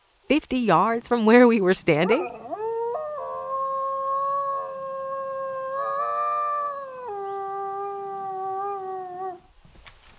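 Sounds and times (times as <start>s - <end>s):
speech: 0.3s - 2.4s
Mexican gray wolf howling: 2.0s - 9.5s
Mexican gray wolves yipping: 2.0s - 9.5s.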